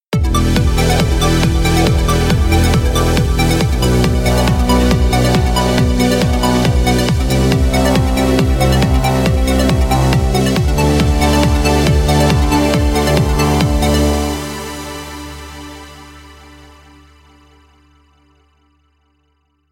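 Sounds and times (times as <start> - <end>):
kick drum: 0.1 - 14.3.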